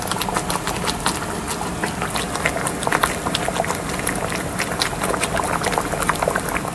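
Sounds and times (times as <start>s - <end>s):
food bubbling and simmering in a pot: 0.0s - 6.7s.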